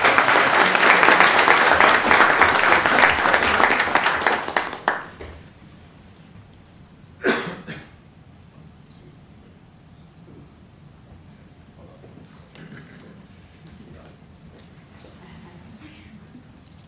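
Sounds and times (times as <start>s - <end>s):
audience applause for a student recognition: 0.0s - 5.5s.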